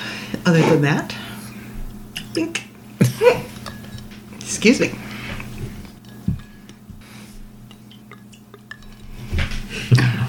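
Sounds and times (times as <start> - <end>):
low steady hum: 0.0 - 10.2
speech: 0.5 - 1.2, 2.4 - 3.4, 4.5 - 5.0
glasses clinking: 3.0 - 9.7.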